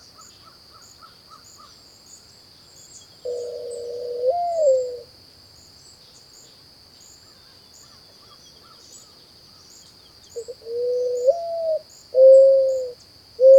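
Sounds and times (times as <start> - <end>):
faint bird chirps: 0.0 - 5.0, 5.7 - 13.5
mourning dove giving a soft rising-then-falling coo: 3.2 - 5.1, 10.4 - 13.5.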